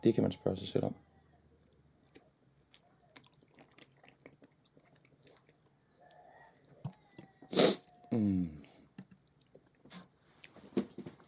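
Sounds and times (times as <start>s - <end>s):
speech: 0.0s - 1.2s
person chewing egg: 1.6s - 10.6s.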